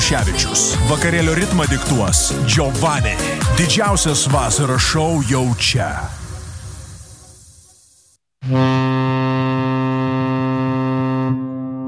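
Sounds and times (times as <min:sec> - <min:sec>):
speech: 0:00.1 - 0:06.2, 0:08.5 - 0:08.7
hissing rush: 0:03.2 - 0:08.2
deep loud horn of a large river-cruise steamer on the Nemunas loops: 0:08.4 - 0:11.8.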